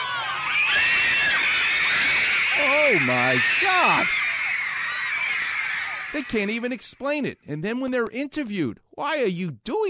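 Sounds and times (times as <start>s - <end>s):
crowd of fans screaming and shrieking: 0.0s - 7.0s
speech: 2.9s - 4.2s, 6.1s - 9.8s.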